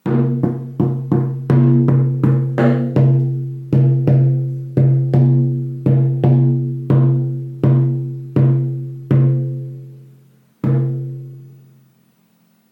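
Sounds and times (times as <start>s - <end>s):
shaman drum made of wood with hide: 0.0s - 11.7s.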